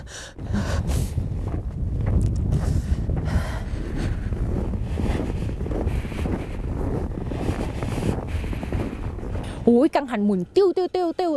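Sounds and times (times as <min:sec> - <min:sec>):
strong cold wind blowing off a glacier in mountain valleys: 0:00.0 - 0:11.3
speech: 0:09.7 - 0:11.3.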